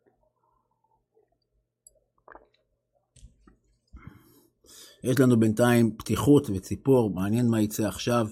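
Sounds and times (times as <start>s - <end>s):
person gulping water: 0.1s - 4.0s
speech: 5.0s - 8.2s.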